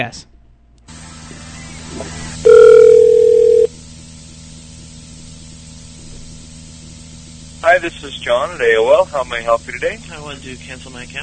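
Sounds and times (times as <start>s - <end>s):
speech: 0.0s - 0.3s, 1.9s - 2.2s, 7.7s - 11.2s
faint low hum: 0.0s - 11.2s
steady electronic telephone tone: 1.6s - 3.7s.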